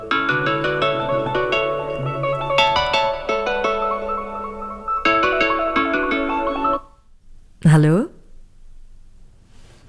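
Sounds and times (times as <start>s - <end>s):
phone ringtone playing a bright repeating electronic melody: 0.0s - 6.9s
speech: 7.8s - 8.0s.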